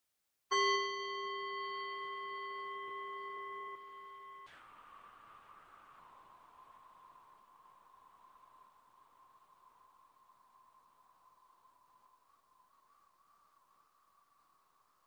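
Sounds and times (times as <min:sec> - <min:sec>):
single meditation bell ringing: 0:00.5 - 0:04.5.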